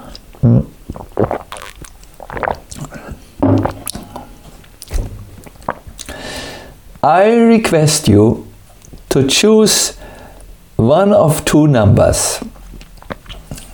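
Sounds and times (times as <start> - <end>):
person gulping a drink of water: 0.0 - 7.0, 12.4 - 13.7
small mouth and liquid noises: 0.0 - 9.2, 12.0 - 13.7
speech: 7.1 - 8.5, 9.2 - 10.0, 10.8 - 12.6.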